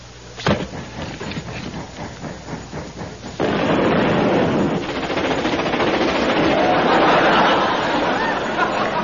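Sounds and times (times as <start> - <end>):
special strong coal thrown on a fire exploding: 0.4 - 7.3
fire roaring and crackling: 1.2 - 7.0
laughter: 6.4 - 9.0.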